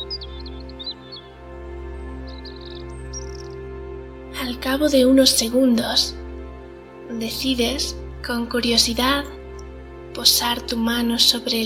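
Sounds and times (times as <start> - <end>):
small birds chirping and trilling among trees: 0.0 - 3.8
speech: 4.4 - 6.2, 7.2 - 9.4, 10.2 - 11.6.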